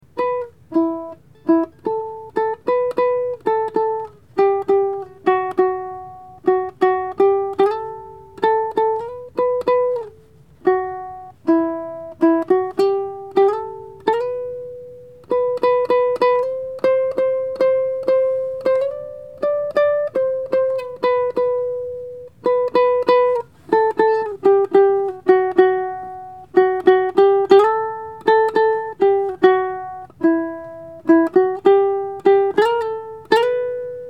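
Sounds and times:
sad ukulele melody: 0.0s - 34.0s.

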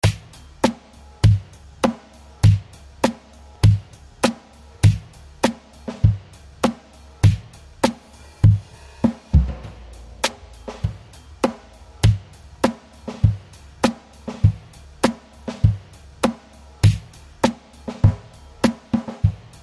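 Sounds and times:
drum groove: 0.0s - 19.6s.

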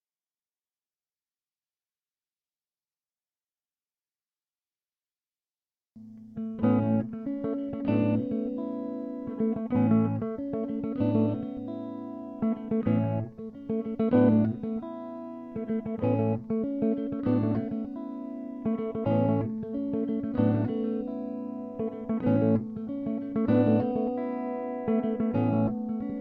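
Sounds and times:
guitar motif in five-four time: 6.0s - 26.1s.

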